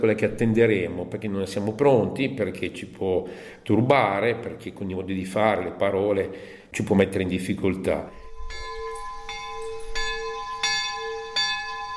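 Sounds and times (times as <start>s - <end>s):
speech: 0.0s - 8.6s
bell ringing at a monastery entrance: 8.1s - 11.9s.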